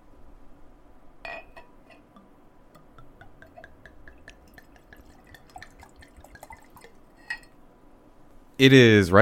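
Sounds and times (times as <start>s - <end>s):
dark red blend wine trickling into a glass: 2.8s - 7.6s
light glassy clinks: 7.2s - 7.6s.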